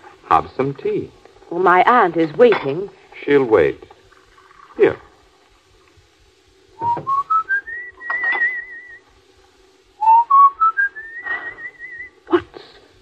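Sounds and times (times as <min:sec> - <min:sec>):
speech: 0:00.4 - 0:03.9, 0:04.8 - 0:05.1, 0:06.8 - 0:07.2
sharp knock: 0:06.8 - 0:07.2
person whistling a tune: 0:06.8 - 0:09.0, 0:10.0 - 0:12.2.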